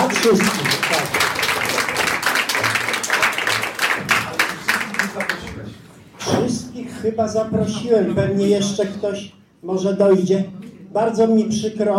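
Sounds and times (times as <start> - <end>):
audience applause: 0.0 - 5.4
speech: 0.2 - 0.8, 7.0 - 11.9.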